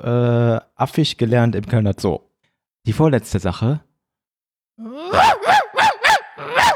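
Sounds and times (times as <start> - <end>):
speech: 0.0 - 3.9, 4.8 - 5.6
person imitating a barking dog: 4.8 - 6.7.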